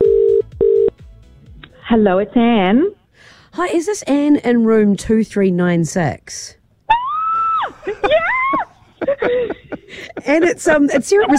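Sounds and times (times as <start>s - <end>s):
speech: 1.9s - 6.6s, 7.8s - 8.4s, 9.2s - 11.3s
person screaming excitedly: 6.9s - 8.8s
laughter: 7.7s - 11.3s.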